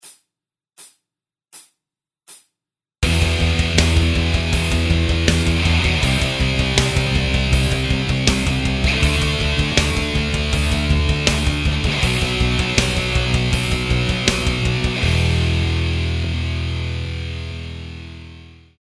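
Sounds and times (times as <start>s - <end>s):
backing track music: 3.0s - 18.5s.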